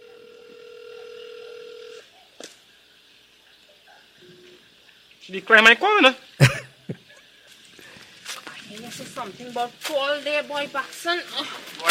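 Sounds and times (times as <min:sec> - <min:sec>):
steady buzzy telephone tone: 0:00.0 - 0:02.0
speech: 0:05.3 - 0:06.2, 0:09.2 - 0:11.8.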